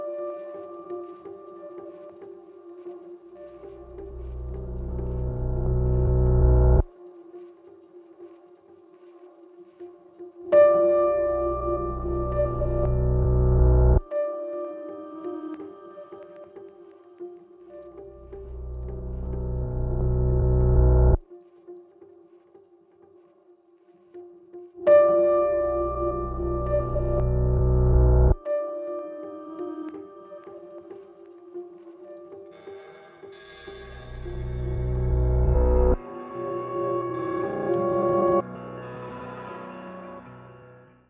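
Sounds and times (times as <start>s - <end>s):
low tones: 3.8s - 6.9s, 10.9s - 14.1s, 18.0s - 21.2s, 24.9s - 28.5s, 33.8s - 38.4s.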